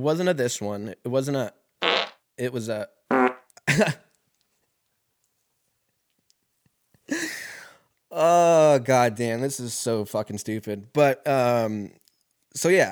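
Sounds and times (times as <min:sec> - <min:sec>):
speech: 0:00.0 - 0:01.6, 0:02.4 - 0:03.0, 0:03.7 - 0:04.1, 0:08.2 - 0:12.9
buzzy fart sound effects: 0:01.8 - 0:02.2, 0:03.1 - 0:03.5.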